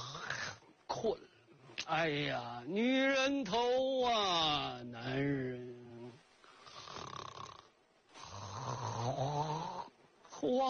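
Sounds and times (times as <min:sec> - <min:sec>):
man snoring sound asleep after a full meal: 0:00.0 - 0:00.6, 0:06.7 - 0:10.0
speech: 0:01.0 - 0:01.3, 0:01.9 - 0:05.8, 0:10.4 - 0:10.6.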